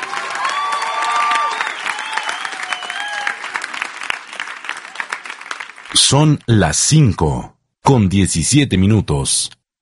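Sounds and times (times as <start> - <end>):
whistles and cheers from a crowd: 0.0 - 3.8
crowd applauding: 0.0 - 6.0
speech: 5.9 - 9.6.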